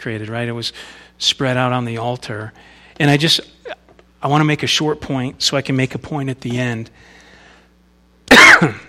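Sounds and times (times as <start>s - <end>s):
speech: 0.0s - 7.2s, 8.6s - 8.8s
harsh rasping cough: 8.3s - 8.8s.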